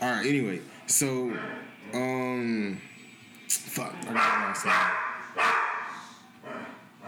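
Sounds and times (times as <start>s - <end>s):
speech: 0.2s - 2.9s, 3.5s - 5.6s
dog barking: 1.3s - 1.7s, 4.1s - 7.0s.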